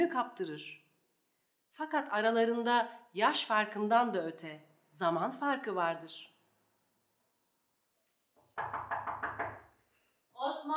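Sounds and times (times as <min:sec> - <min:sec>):
speech: 0:00.0 - 0:00.8, 0:01.8 - 0:06.3, 0:10.4 - 0:10.7
firm loud knocks on a door: 0:08.5 - 0:09.8.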